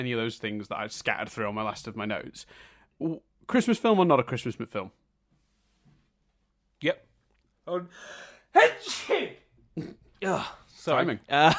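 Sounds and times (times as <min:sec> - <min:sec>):
speech: 0:00.0 - 0:05.0, 0:06.8 - 0:07.1, 0:07.7 - 0:11.5
sharp wind-up breath before a sneeze: 0:07.9 - 0:08.5
big explosive sneeze: 0:08.6 - 0:10.6.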